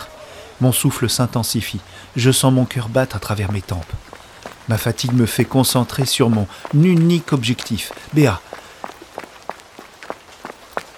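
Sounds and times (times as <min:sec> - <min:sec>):
faint hiss: 0:00.0 - 0:10.9
speech: 0:00.6 - 0:04.1, 0:04.7 - 0:08.6
running footsteps: 0:02.2 - 0:10.9.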